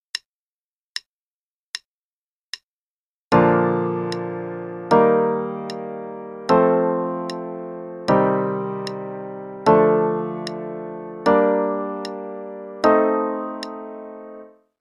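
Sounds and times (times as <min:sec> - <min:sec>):
primary and secondary chords in Bb major: 0:03.3 - 0:14.6.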